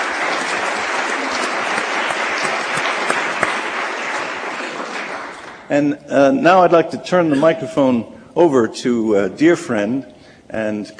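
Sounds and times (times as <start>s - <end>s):
crowd applause at an event: 0.0s - 5.7s
speech: 5.7s - 10.9s.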